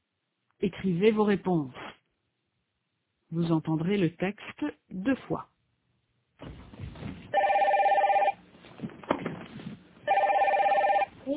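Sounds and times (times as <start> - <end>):
speech: 0.6 - 1.8, 3.3 - 5.5
telephone ringing with a bright trilling bell tone: 7.4 - 8.4, 10.0 - 11.2.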